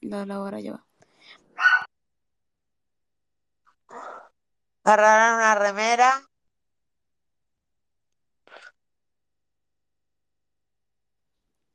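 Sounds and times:
speech: 0.1 - 1.7, 4.8 - 6.3
dog barking while playing: 1.6 - 1.9.

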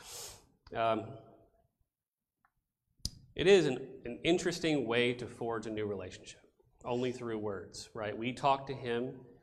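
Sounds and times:
person blowing their nose: 0.0 - 0.6
speech: 0.7 - 1.3, 3.4 - 9.3.

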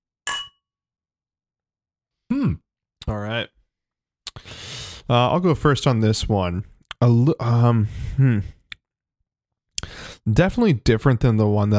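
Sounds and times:
beer glasses clinking in a toast: 0.3 - 0.6
speech: 2.3 - 3.6, 5.1 - 8.6, 10.2 - 11.7.

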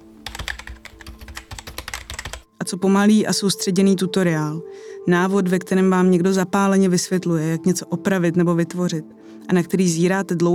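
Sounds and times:
typing on a computer keyboard: 0.2 - 2.5
speech: 2.7 - 10.5.

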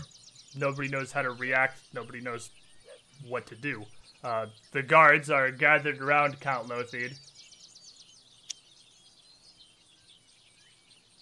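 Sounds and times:
birds chattering: 0.0 - 11.2
speech: 0.6 - 2.6, 3.2 - 7.3.

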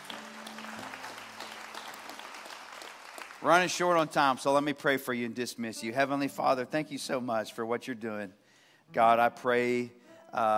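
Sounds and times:
room full of people clapping: 0.0 - 4.5
speech: 3.4 - 10.5.

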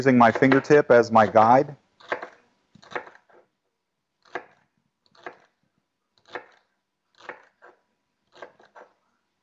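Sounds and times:
speech: 0.0 - 1.8
knife slicing celery ribs on a cutting board: 0.0 - 3.5, 4.2 - 9.0.

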